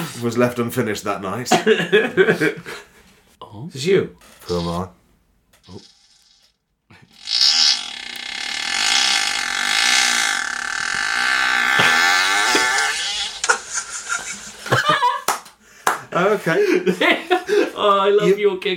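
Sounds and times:
speech: 0.2 - 2.9, 3.5 - 5.0, 5.6 - 6.0, 16.2 - 18.7
laughter: 1.5 - 2.9, 11.8 - 17.8
fart: 5.6 - 13.6.

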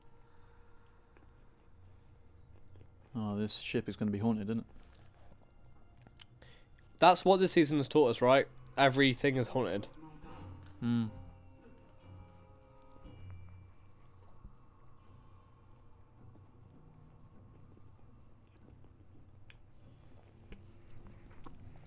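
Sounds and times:
crunchy chewing of food: 0.3 - 3.2, 4.5 - 7.0, 11.7 - 21.8
speech: 3.2 - 4.9, 7.0 - 10.0, 10.8 - 11.2.

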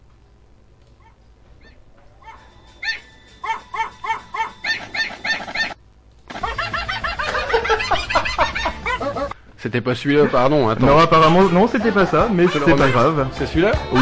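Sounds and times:
small dog barking in a played video: 2.2 - 5.8
laughter: 6.3 - 9.4, 10.1 - 14.0
speech: 9.6 - 14.0.

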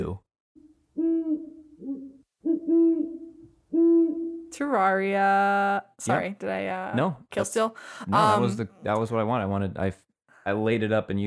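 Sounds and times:
speech: 0.0 - 0.3, 4.6 - 11.2
owl hooting from a video game: 1.0 - 4.5.

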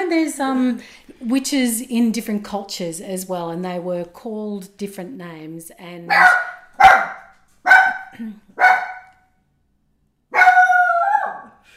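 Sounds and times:
speech: 0.1 - 6.6, 8.1 - 8.9
dog barking and yowling: 6.1 - 9.2, 10.3 - 11.6.

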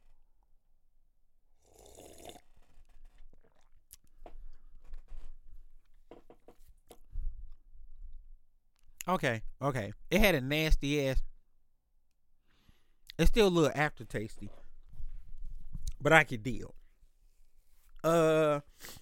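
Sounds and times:
quiet swallowing: 1.6 - 4.8
small mouth clicks and lip smacks: 3.0 - 4.4
speech: 9.1 - 11.3, 13.2 - 14.6, 16.0 - 16.8, 18.0 - 18.9.

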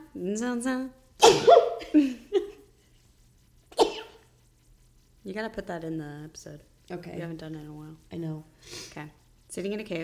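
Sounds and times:
speech: 0.2 - 2.2, 5.2 - 10.0
sneeze: 1.2 - 1.8, 3.8 - 4.2.

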